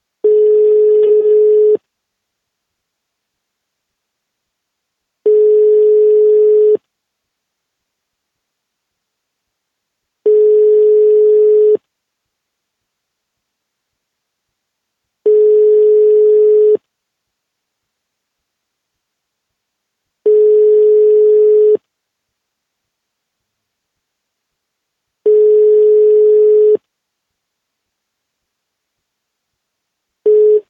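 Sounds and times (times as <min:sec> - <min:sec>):
phone call tone: 0:00.2 - 0:01.8, 0:05.2 - 0:06.8, 0:10.2 - 0:11.8, 0:15.3 - 0:16.8, 0:20.3 - 0:21.8, 0:25.3 - 0:26.8, 0:30.2 - 0:30.6.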